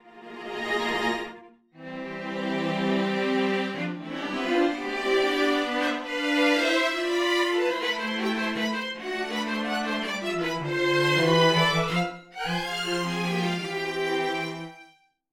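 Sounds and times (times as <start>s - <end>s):
scoring strings: 0.0s - 15.0s.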